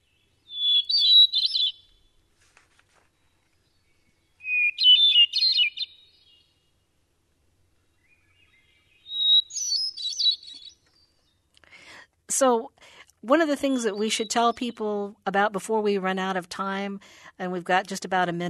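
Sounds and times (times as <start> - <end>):
hermit thrush singing: 0.0 - 2.0, 3.7 - 6.6, 7.9 - 11.3, 13.8 - 14.8
speech: 12.4 - 18.4.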